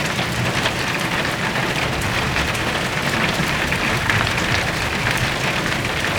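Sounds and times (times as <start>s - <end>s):
heavy rain on a roof: 0.0s - 6.1s.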